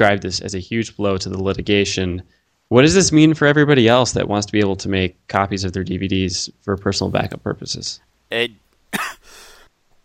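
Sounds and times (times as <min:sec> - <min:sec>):
speech: 0:00.0 - 0:09.2
man clearing throat: 0:08.9 - 0:09.6
man coughing while recovering from a cough: 0:08.9 - 0:09.6.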